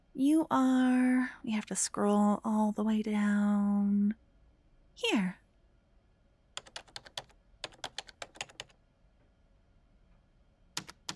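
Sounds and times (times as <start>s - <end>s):
speech: 0.2s - 4.2s, 5.0s - 5.4s
rapid forceful typing on a computer keyboard: 6.6s - 8.7s, 10.8s - 11.1s.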